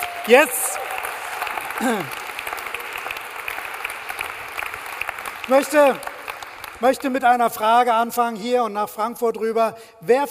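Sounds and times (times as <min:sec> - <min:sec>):
audience applause: 0:00.0 - 0:07.3
speech: 0:00.2 - 0:00.8, 0:01.8 - 0:02.2, 0:05.5 - 0:06.1, 0:06.8 - 0:10.2
person whooping: 0:01.8 - 0:02.2.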